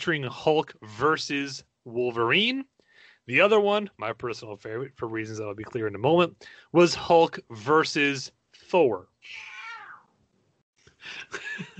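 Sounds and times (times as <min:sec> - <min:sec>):
speech: 0:00.0 - 0:09.5
cat meowing: 0:09.3 - 0:10.1
laughter: 0:11.0 - 0:11.7.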